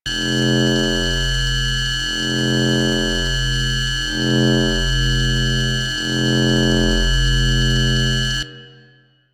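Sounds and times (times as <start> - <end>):
computer terminal ambience loop: 0.1 - 8.4.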